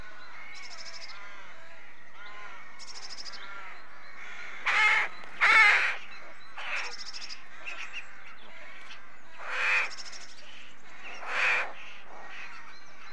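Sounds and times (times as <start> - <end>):
rook cawing at a rookery: 0.0 - 12.7.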